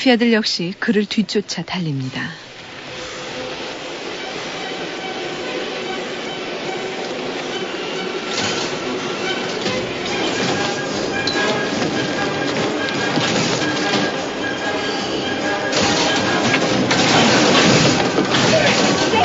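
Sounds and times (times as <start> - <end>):
speech: 0.0 - 2.5
moving subway train heard from inside the running car: 0.0 - 19.2.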